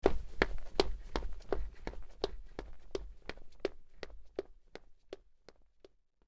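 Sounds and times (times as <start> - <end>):
footsteps running outdoors: 0.0 - 5.6.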